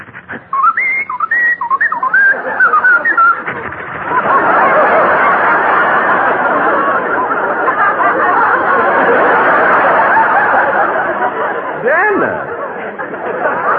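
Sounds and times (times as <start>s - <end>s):
whistling in short bright rising and falling notes: 0.2s - 5.6s
crowd laughter: 1.2s - 13.7s.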